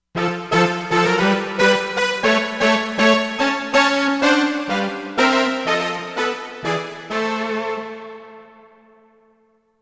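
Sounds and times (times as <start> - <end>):
Hiti brass synthesizer sound from Korg MSC-13S Ethnic 2: 0.4 - 8.0.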